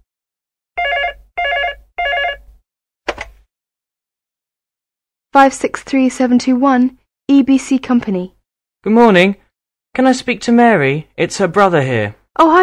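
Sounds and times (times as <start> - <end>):
telephone ringing: 0.8 - 2.5
speech: 5.3 - 9.4, 10.0 - 12.6.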